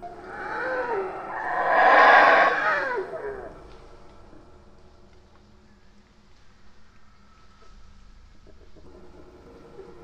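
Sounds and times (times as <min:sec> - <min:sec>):
howler monkey howling: 0:00.0 - 0:03.6.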